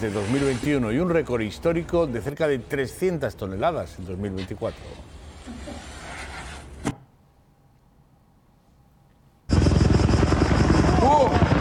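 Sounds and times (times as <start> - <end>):
speech: 0.0 - 5.6
two firefighting helicopters roaring in mid-air fighting a fire west of Athens: 9.5 - 11.6.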